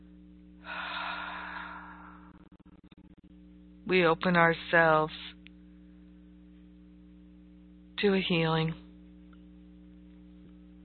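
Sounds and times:
low steady hum: 0.0 - 10.8
slow deep inhale of breath: 0.6 - 2.4
speech: 3.9 - 5.3, 8.0 - 8.8.

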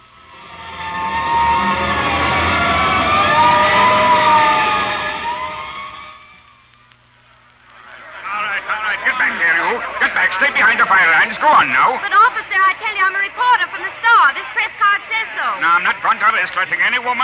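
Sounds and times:
fire engine siren wailing on the way to a fire: 0.0 - 6.5
laughter: 7.7 - 15.6
speech: 16.4 - 17.2.

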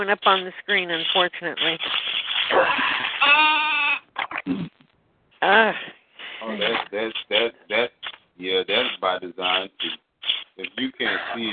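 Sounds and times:
speech: 0.0 - 3.6, 4.4 - 4.8, 5.4 - 10.0, 10.6 - 11.5
person imitating sheep with wavering bleats: 2.5 - 4.7.

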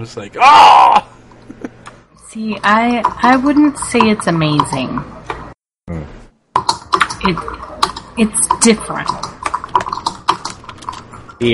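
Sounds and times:
speech: 0.0 - 1.2, 2.3 - 5.2, 7.2 - 7.6, 8.2 - 9.2
computer keyboard typing: 2.5 - 5.4, 6.6 - 11.3.

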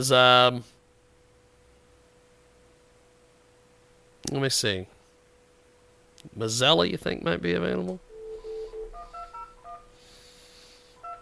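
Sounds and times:
speech: 0.0 - 0.8, 4.2 - 5.0, 6.2 - 8.0
touch-tone beeps of a telephone number being dialed on a keypad: 8.2 - 9.9, 11.0 - 11.1.

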